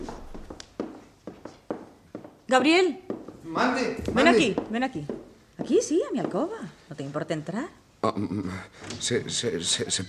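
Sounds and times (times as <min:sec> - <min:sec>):
high heels tapping on wooden floorboards: 0:00.0 - 0:06.7
speech: 0:02.5 - 0:10.0.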